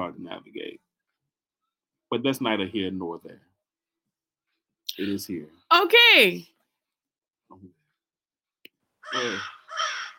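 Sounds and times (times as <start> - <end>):
speech: 2.1 - 3.5, 5.0 - 6.5, 7.5 - 7.8, 9.1 - 9.6
crow cawing harshly: 9.0 - 10.1.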